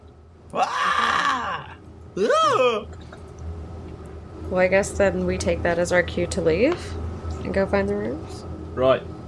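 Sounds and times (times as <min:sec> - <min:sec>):
speech: 0:00.5 - 0:00.8, 0:02.2 - 0:03.0, 0:04.5 - 0:09.1
person screaming: 0:00.5 - 0:02.9.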